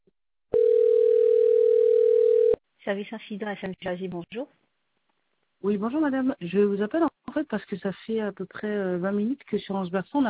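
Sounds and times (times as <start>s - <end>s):
telephone dial tone: 0.6s - 2.6s
speech: 2.9s - 4.6s, 5.6s - 10.2s.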